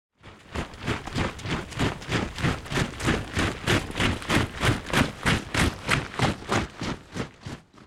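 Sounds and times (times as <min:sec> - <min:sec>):
soldiers marching footsteps: 0:00.2 - 0:07.8.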